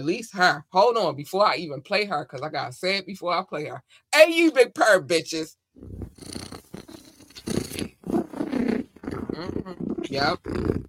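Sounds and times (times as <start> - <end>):
speech: 0.0 - 6.5, 9.4 - 10.8
cat purring: 5.8 - 10.8.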